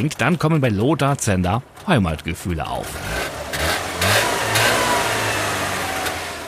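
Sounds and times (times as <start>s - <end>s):
speech: 0.0s - 3.3s
Trabant 601S Deluxe two-stroke car engine revving and idling: 2.8s - 6.4s.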